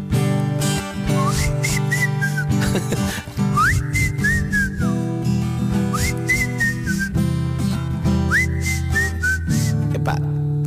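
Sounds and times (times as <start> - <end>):
full steady instrumental backing with a beat: 0.0 - 9.8
person whistling a bright melody: 1.1 - 5.2, 5.8 - 7.3, 8.2 - 10.0
short laugh: 2.4 - 3.5
speech: 2.8 - 3.2.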